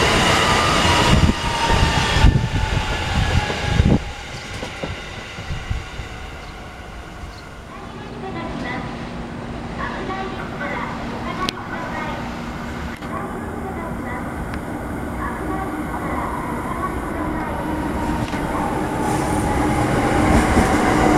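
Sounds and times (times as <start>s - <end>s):
electric commuter train rumbling and clattering: 0.0s - 21.1s
faint voices: 7.6s - 19.5s.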